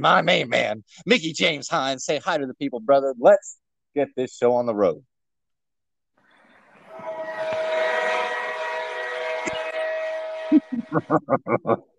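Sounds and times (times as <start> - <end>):
speech: 0.0 - 5.1, 10.5 - 11.9
loud sustained train whistle: 6.7 - 11.0
laughter: 10.5 - 11.9.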